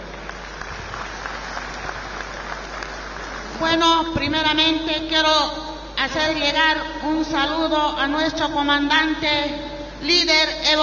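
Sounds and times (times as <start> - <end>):
audience applause welcoming a speaker: 0.0 - 3.8
speech: 3.6 - 10.8.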